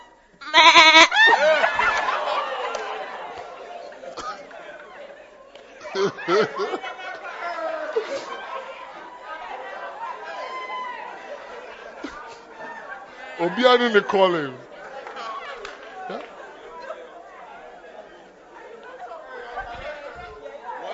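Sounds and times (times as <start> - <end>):
lively crowd chatter: 0.0 - 20.9
people laughing: 0.0 - 20.9
goat bleating: 0.4 - 1.1
speech: 6.3 - 6.7, 13.4 - 14.7.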